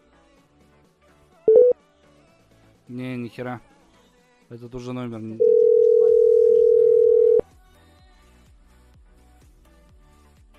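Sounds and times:
telephone line tone on a call to a busy number: 1.5s - 1.7s, 5.4s - 7.4s
speech: 2.9s - 3.7s, 4.5s - 5.6s.

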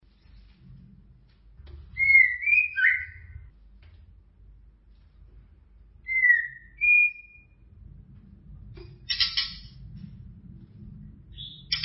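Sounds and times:
faint low hum: 0.0s - 11.8s
white-rumped shama whistled song: 1.9s - 3.5s, 6.0s - 7.6s, 9.1s - 9.7s, 11.3s - 11.8s.

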